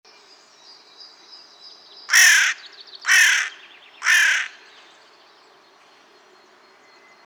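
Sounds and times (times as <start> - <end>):
carrion crow Corvus corone giving harsh rasping caws: 2.1 - 4.7.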